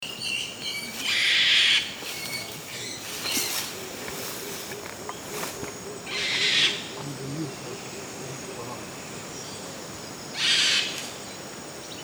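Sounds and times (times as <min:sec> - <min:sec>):
Tanimbar corella calling: 0:00.0 - 0:11.6.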